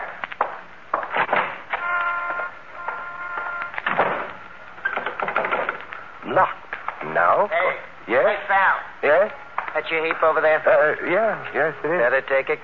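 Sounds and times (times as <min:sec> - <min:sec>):
front door closing: 0:01.0 - 0:05.9
door lock being turned with clicks and rattles: 0:04.8 - 0:05.9
speech: 0:06.4 - 0:12.6.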